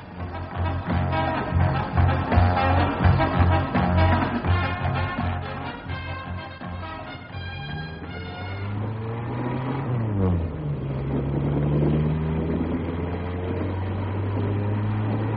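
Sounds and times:
car engine droning at speed and accelerating: 0.0s - 15.3s
constant rushing road noise: 0.0s - 15.3s.

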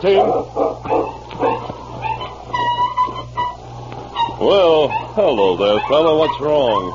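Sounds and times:
speech: 0.0s - 0.8s, 4.4s - 6.9s
steady low hum: 0.0s - 5.4s
dog with foot caught in a trap yelping and whimpering: 0.2s - 2.4s, 4.8s - 6.9s.

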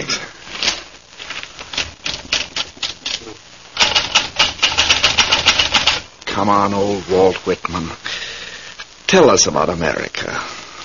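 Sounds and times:
typewriter clattering with rapid key strikes: 1.7s - 6.0s
speech: 6.4s - 8.1s, 9.1s - 10.6s.

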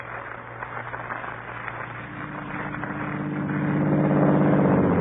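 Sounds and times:
car engine starting idling and revving as the car pulls away: 2.3s - 5.0s.

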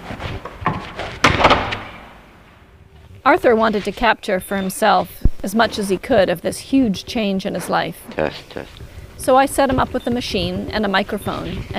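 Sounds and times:
apartment door slamming shut: 0.7s - 2.1s
speech: 3.3s - 11.7s.

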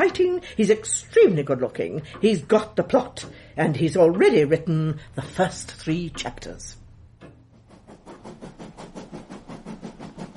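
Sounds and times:
speech: 0.0s - 6.8s
train carriage rumbling on rails heard from inside: 7.7s - 10.3s.

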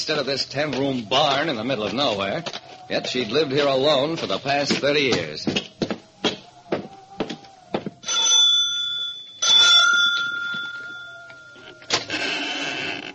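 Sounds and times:
speech: 0.0s - 5.7s
doorbell ringing: 8.0s - 12.6s.

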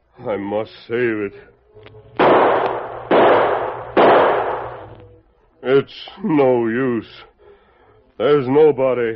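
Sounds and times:
speech: 0.2s - 2.6s, 5.6s - 7.3s, 8.2s - 9.1s
loud gunshots: 2.2s - 5.0s.

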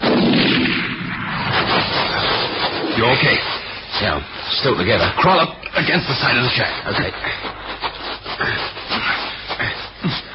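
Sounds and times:
shotgun blast fired at a shack: 0.0s - 3.0s
speech: 3.0s - 7.7s, 8.4s - 9.1s.

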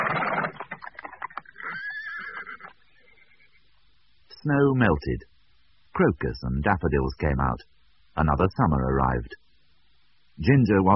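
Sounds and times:
horses pawing and stamping on frosty cobbles: 0.0s - 2.8s
rough scraping burst of hooves on frosty cobbles: 0.0s - 3.1s
drawn-out horse whinny: 0.0s - 3.6s
speech: 4.4s - 5.3s, 6.0s - 9.4s, 10.4s - 10.9s.

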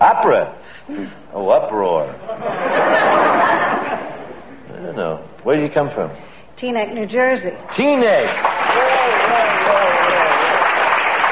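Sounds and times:
speech: 0.1s - 2.6s, 4.9s - 9.4s
laughter: 2.3s - 4.6s
audience applause: 7.7s - 11.3s.

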